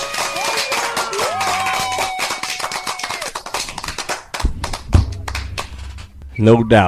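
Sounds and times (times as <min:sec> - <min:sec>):
rapid dense clapping sound effect: 0:00.0 - 0:06.2
low rumble: 0:04.4 - 0:06.8
rising whistle-like tones: 0:06.2 - 0:06.8
speech: 0:06.4 - 0:06.8.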